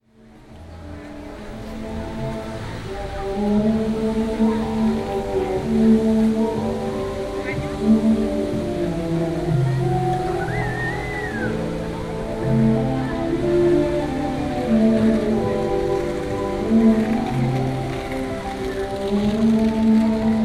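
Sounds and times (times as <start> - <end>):
fountain in Gorky Park: 0.1 - 20.4.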